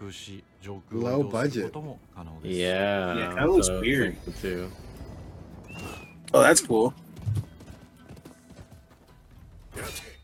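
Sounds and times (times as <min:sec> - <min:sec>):
speech: 0:00.1 - 0:04.8, 0:05.8 - 0:07.0
horse hooves clip-clopping in a video game trailer: 0:06.6 - 0:09.7.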